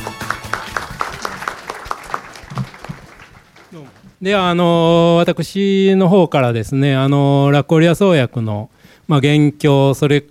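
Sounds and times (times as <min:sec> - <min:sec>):
audience at an investor relations seminar in Tokyo applauding: 0:00.0 - 0:04.2
speech: 0:03.7 - 0:10.2.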